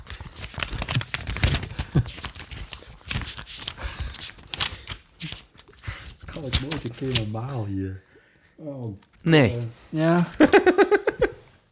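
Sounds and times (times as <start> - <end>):
paper diary pages flipping on a table: 0.0 - 7.8
speech: 6.4 - 11.0
laughter: 10.4 - 11.4.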